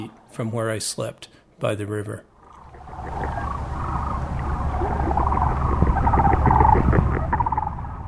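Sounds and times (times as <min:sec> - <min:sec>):
speech: 0:00.0 - 0:02.3
steady low rumble: 0:02.3 - 0:08.0
Sandhill cranes giving subdued rolling calls at midnight: 0:02.4 - 0:08.0.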